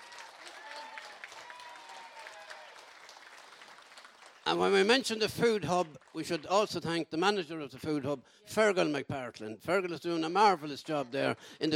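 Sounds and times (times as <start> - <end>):
crowd applauding: 0.0 - 6.7
speech: 4.5 - 11.7.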